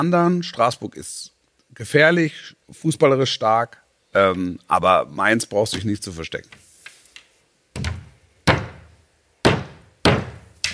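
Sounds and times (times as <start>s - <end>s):
speech: 0.0s - 6.6s
heavy resonant knocks with a lingering thud: 7.8s - 10.7s.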